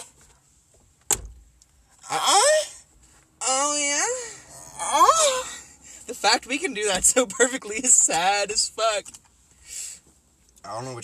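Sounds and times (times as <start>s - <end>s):
car door slamming shut: 1.0s - 1.5s
loud breathy sweeping vocal noise: 4.0s - 5.7s
speech: 6.2s - 9.3s, 10.7s - 11.0s.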